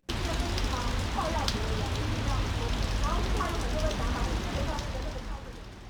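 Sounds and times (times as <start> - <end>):
faint murmuring voices: 0.1 - 5.8
pouring rain: 0.1 - 5.8.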